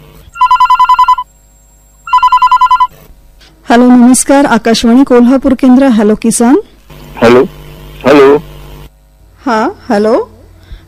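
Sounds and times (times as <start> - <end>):
telephone ringing with an incoming call: 0.4 - 1.3, 2.1 - 2.9
speech: 3.7 - 8.5, 9.5 - 10.3.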